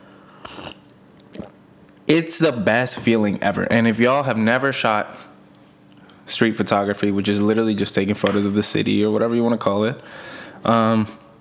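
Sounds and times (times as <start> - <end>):
sipping a drink: 0.0 - 1.6
speech: 2.1 - 5.3, 6.3 - 11.2.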